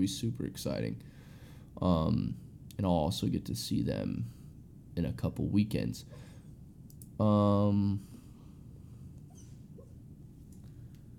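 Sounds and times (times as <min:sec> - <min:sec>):
speech: 0:00.0 - 0:01.2, 0:01.8 - 0:04.4, 0:05.0 - 0:06.3, 0:07.2 - 0:08.1
faint clicks: 0:06.9 - 0:07.2
sleeping dog yelping whine: 0:09.2 - 0:10.0.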